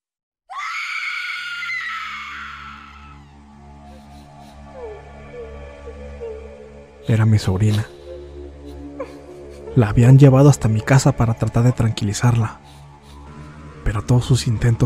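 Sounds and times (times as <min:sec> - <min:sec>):
hysterical young woman screaming: 0:00.5 - 0:03.4
hysterical young woman wailing and sobbing: 0:01.7 - 0:06.8, 0:07.9 - 0:09.8
speech: 0:07.1 - 0:08.0, 0:09.8 - 0:12.8, 0:13.8 - 0:14.8.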